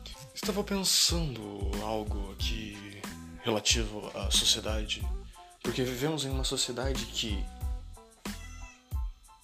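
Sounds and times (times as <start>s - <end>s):
speech: 0.5s - 7.6s
cat meowing: 8.2s - 9.0s.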